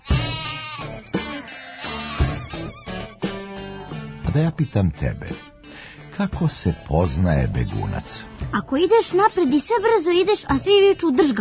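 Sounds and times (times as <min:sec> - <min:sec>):
sheep bleating: 0:00.0 - 0:02.8
speech: 0:04.4 - 0:05.5, 0:06.2 - 0:11.3.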